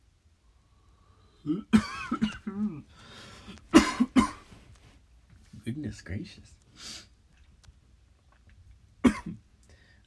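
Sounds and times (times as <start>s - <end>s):
speech: 1.4s - 2.0s, 5.8s - 7.0s
harsh cough: 1.5s - 2.9s, 3.7s - 4.5s, 9.0s - 9.4s.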